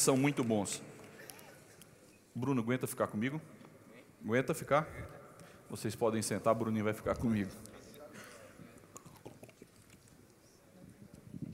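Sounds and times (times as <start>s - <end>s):
speech: 0.0s - 1.0s, 2.4s - 3.6s, 4.2s - 7.7s
person drinking water straight from a bottle: 8.6s - 10.2s.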